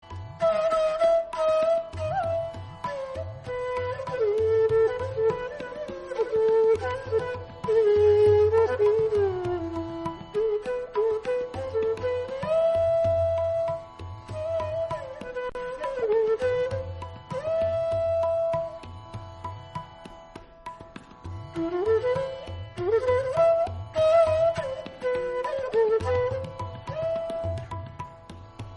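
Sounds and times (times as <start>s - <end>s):
flute instrumental: 0.0s - 20.0s, 20.7s - 28.7s.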